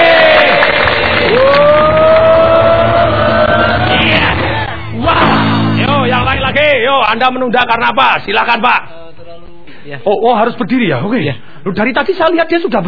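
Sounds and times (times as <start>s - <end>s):
seminar audience cheering and shouting: 0.0s - 6.1s
speech: 7.2s - 8.9s, 9.9s - 12.8s.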